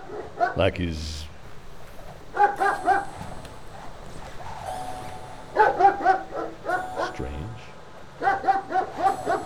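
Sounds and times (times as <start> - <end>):
speech: 0.5 - 1.3
neighbor's dog chained to a tree barking: 1.5 - 7.2, 8.2 - 9.4.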